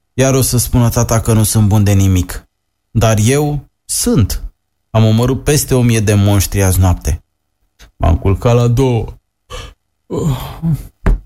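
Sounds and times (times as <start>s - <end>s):
speech: 0.2s - 7.2s, 8.0s - 10.9s
low groaning voice: 9.5s - 10.9s
father knocking hard on a door to wake the house: 11.0s - 11.2s.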